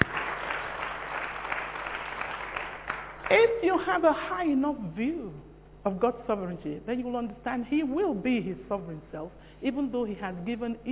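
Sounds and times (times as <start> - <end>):
audience applauding: 0.0 - 3.5
speech: 3.3 - 10.9.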